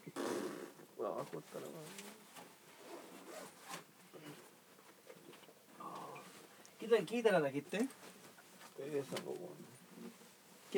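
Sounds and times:
zipper on a guitar case being pulled open: 0.2 - 0.8, 2.8 - 3.8
speech: 1.0 - 2.4, 6.8 - 8.2, 8.8 - 10.1.

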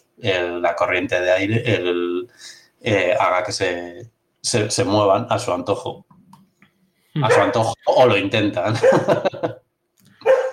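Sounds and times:
speech: 0.2 - 6.1, 7.2 - 9.6
person laughing: 1.5 - 1.9, 8.7 - 9.6
dog barking: 7.3 - 7.6, 8.8 - 9.1, 10.2 - 10.5.

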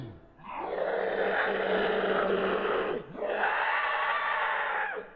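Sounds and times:
harsh roaring creature screams from the forest by a tree line: 0.6 - 5.1.

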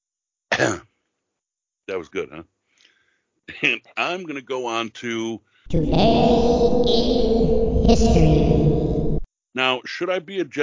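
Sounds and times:
throat clearing: 0.5 - 0.9
speech: 0.6 - 0.9, 1.9 - 2.5, 3.5 - 8.6, 9.6 - 10.6.

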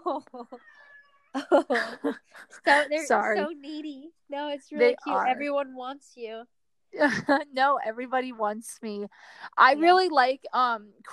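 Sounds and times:
speech: 0.0 - 11.1
cat meowing wanting to be petted: 0.6 - 1.4.

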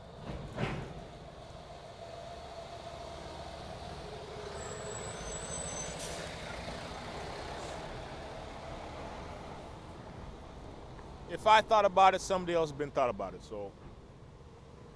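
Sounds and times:
large truck engine rumbling: 0.0 - 11.9
truck air brakes hissing: 4.5 - 6.4
speech: 11.3 - 13.8.

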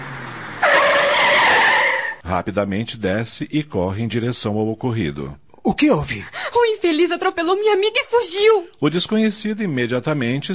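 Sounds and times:
passing car braking hard with tires skidding: 0.0 - 2.2
speech: 2.3 - 10.5.

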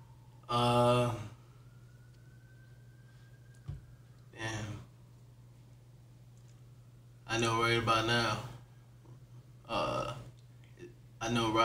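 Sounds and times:
distant emergency vehicle sirens down the street: 0.0 - 8.9
speech: 0.5 - 1.2, 7.4 - 8.5, 11.2 - 11.6.

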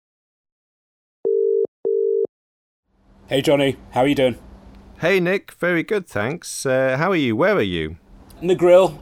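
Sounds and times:
telephone ringback tone in double-ring pattern: 1.3 - 2.3
speech: 3.3 - 9.0.

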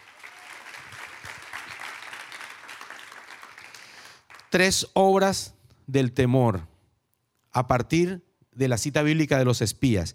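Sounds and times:
large gathering at a religious service applauding: 0.0 - 4.6
speech: 4.5 - 6.7, 7.6 - 10.1.

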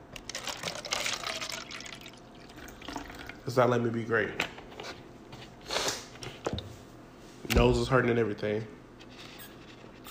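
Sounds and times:
water pouring into a glass: 0.3 - 3.4
speech: 3.4 - 4.5, 7.6 - 8.8.

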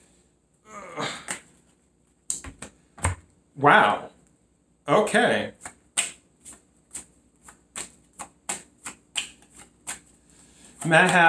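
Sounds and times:
speech: 3.6 - 4.1, 4.9 - 5.6, 10.9 - 11.2
tarot cards being shuffled and drawn: 5.6 - 11.2.

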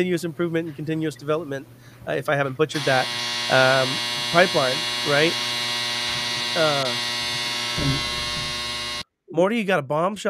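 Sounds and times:
speech: 0.0 - 5.6, 6.6 - 7.2, 9.3 - 10.2
clothes dryer running with a mechanical hum and buzz: 2.8 - 9.0
short voice sounds: 7.8 - 8.2.

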